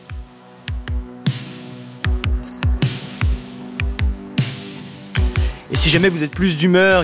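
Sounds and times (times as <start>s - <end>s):
punchy electronic kick drums: 0.1s - 1.4s, 2.0s - 6.1s
speech: 5.8s - 7.0s.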